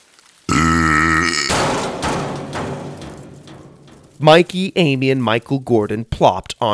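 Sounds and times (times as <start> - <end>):
dumpster burp sound effect: 0.5 - 1.6
speech: 4.2 - 6.7.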